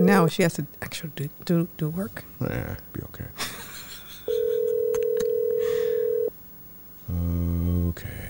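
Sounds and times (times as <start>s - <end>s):
speech: 0.1s - 3.7s, 7.1s - 8.2s
phone call electronic ring tone on the caller's end: 4.3s - 6.3s.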